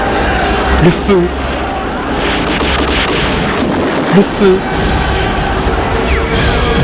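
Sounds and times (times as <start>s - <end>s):
faint voices: 0.1s - 6.4s
speech: 0.8s - 1.4s, 4.2s - 4.9s
explosions: 0.8s - 6.8s
heavy gunfire: 1.6s - 6.8s.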